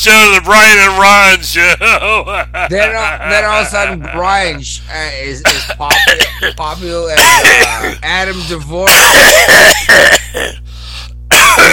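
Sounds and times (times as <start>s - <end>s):
speech: 0.0s - 10.6s, 11.5s - 11.7s
laughter: 1.5s - 4.6s, 5.4s - 6.8s
person coughing loudly in harsh bursts: 5.4s - 8.0s, 8.9s - 10.7s, 11.3s - 11.7s.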